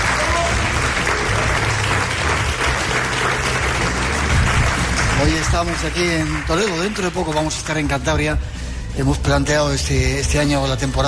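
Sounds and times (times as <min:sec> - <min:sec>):
crowd applauding in a castle hall: 0:00.0 - 0:08.2
speech: 0:05.5 - 0:11.0.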